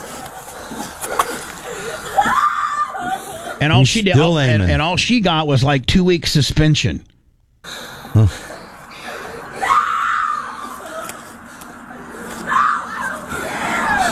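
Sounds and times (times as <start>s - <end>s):
noisy background: 0.0s - 14.1s
woman screaming in distress: 2.1s - 3.6s, 9.6s - 10.9s, 12.5s - 14.1s
speech: 3.6s - 8.5s.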